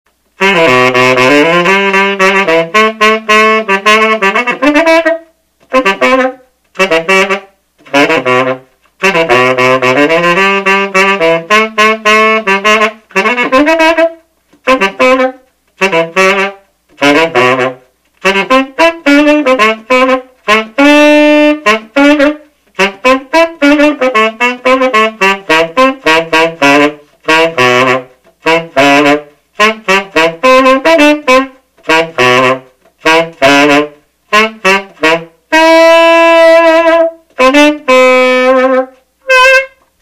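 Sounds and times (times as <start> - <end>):
Buescher Big B tenor saxophone playing a tune: 0.3 - 39.9.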